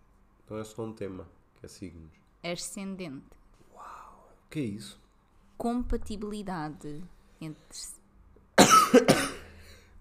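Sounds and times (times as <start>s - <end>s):
speech: 0.5s - 3.4s, 4.5s - 5.0s, 5.6s - 8.0s, 8.9s - 9.3s
person coughing: 8.6s - 9.6s.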